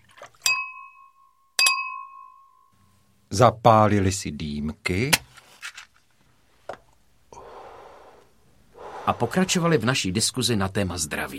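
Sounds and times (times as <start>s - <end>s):
glasses clinking as they are topped up after a meal: 0.4s - 2.7s
speech: 3.4s - 5.3s, 9.1s - 11.3s.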